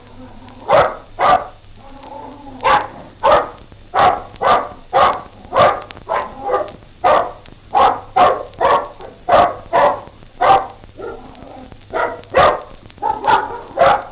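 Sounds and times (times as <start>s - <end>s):
faint low hum: 0.0s - 14.1s
bulldog giving gruff barks: 0.5s - 1.6s, 2.6s - 14.1s.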